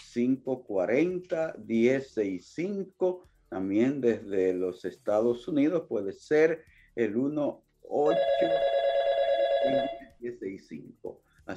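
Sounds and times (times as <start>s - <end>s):
speech: 0.2s - 8.8s, 9.6s - 11.5s
telephone ringing with an incoming call: 7.9s - 10.1s.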